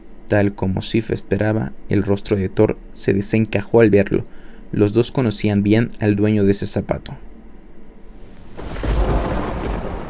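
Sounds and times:
speech: 0.3 - 7.3
thunderclap: 8.2 - 10.0.

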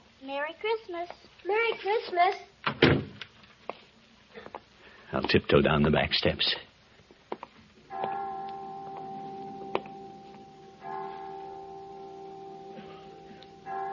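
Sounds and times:
speech: 0.2 - 2.9, 5.1 - 6.7
clock chimes striking five: 7.9 - 13.9.

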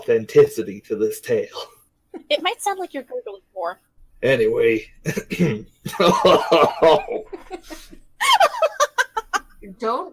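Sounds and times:
speech: 0.0 - 8.7, 9.6 - 10.1
laughter: 4.6 - 9.6
person coughing during a game session: 5.1 - 7.9.

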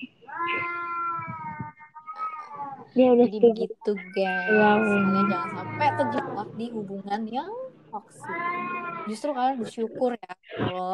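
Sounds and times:
cat meowing: 0.0 - 3.0, 4.0 - 6.4, 8.2 - 9.2
speech: 3.0 - 10.9.

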